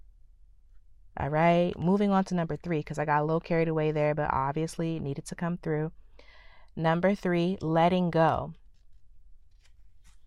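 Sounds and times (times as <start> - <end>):
speech: 1.2 - 6.0, 6.8 - 8.6
paper page turning: 8.6 - 10.2.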